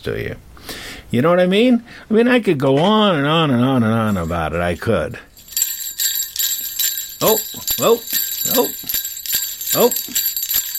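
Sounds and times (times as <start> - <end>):
speech: 0.0 - 0.5, 1.1 - 5.3, 7.2 - 9.0, 9.7 - 10.2
jingle bells shaking: 4.1 - 10.7.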